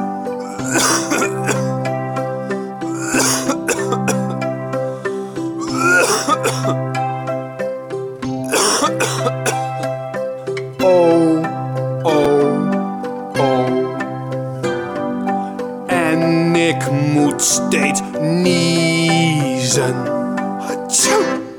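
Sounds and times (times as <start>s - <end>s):
steady tonal music: 0.0s - 21.5s
person clearing throat: 0.4s - 1.7s, 2.9s - 4.4s, 5.6s - 6.8s, 8.5s - 9.9s
person coughing: 0.4s - 1.7s, 2.9s - 4.4s, 5.6s - 6.8s, 8.5s - 9.9s.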